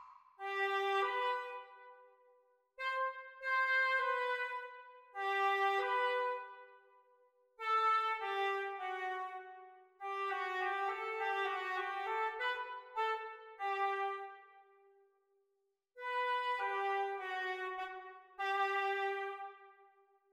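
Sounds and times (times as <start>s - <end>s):
oboe duet: 0.4s - 1.9s, 2.8s - 6.7s, 7.7s - 14.3s, 16.0s - 19.6s.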